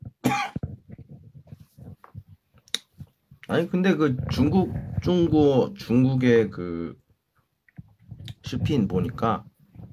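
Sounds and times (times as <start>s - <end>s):
sharp loud cough: 0.2s - 0.7s
soft rough throat-clearing rasps: 0.2s - 0.7s
speech: 3.5s - 7.0s, 8.5s - 9.5s.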